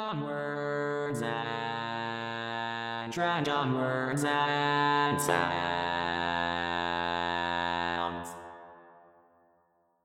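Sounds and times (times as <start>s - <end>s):
bass voice singing barbershop: 0.1s - 8.4s.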